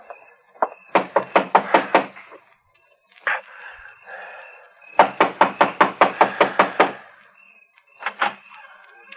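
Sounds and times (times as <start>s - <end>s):
knocking on a wooden farmhouse front door: 0.6s - 2.1s, 5.0s - 7.0s.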